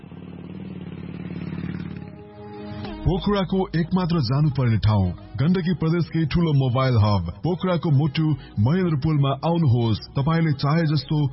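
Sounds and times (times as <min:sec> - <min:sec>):
motorbike engine running: 0:00.0 - 0:02.4
speech: 0:03.0 - 0:11.3.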